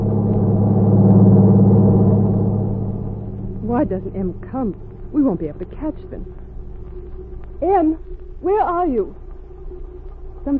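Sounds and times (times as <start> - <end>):
truck passing at high speed with heavy engine rumble: 0.0 - 6.3
speech: 3.8 - 6.5, 7.6 - 9.8.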